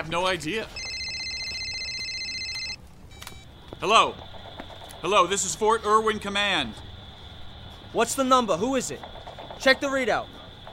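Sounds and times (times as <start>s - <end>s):
speech: 0.0s - 0.8s, 3.8s - 4.3s, 5.0s - 6.9s, 7.9s - 10.4s
satellite phone ringing with a high electronic trill: 0.7s - 3.5s.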